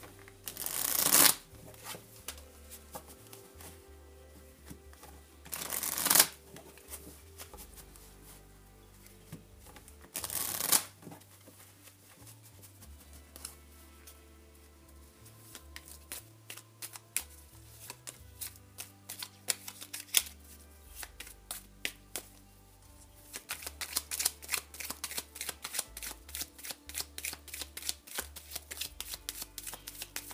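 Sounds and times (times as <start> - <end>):
tarot cards being shuffled: 0.0 - 3.8, 4.6 - 14.2, 15.2 - 22.4, 23.2 - 30.3.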